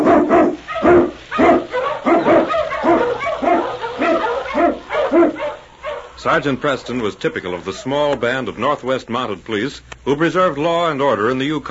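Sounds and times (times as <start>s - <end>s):
pack of husky sled dogs barking in storm and snow in the Yukon: 0.0s - 8.2s
speech: 6.2s - 11.7s.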